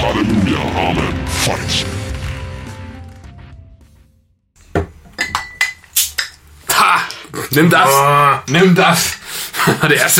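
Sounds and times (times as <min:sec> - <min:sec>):
speech: 0:00.2 - 0:02.1, 0:07.6 - 0:10.1
beer glasses clinking in a toast: 0:04.8 - 0:06.4.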